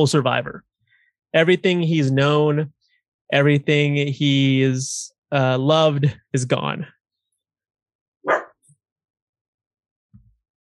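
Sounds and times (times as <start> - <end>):
speech: 0.0 - 0.7, 1.3 - 7.0
dog barking: 8.2 - 8.6.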